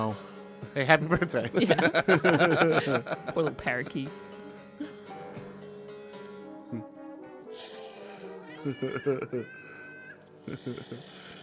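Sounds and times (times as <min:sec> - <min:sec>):
speech: 0:00.0 - 0:04.2, 0:08.6 - 0:09.6, 0:10.4 - 0:11.3
laughter: 0:01.1 - 0:04.1, 0:08.5 - 0:09.8, 0:10.4 - 0:11.2
cat meowing: 0:07.5 - 0:10.2.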